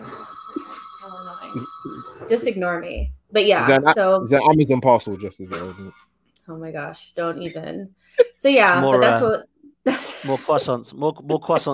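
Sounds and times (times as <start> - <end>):
steady electronic bell ringing in the room: 0.0 - 4.2
speech: 2.3 - 11.7
laughter: 9.9 - 11.4.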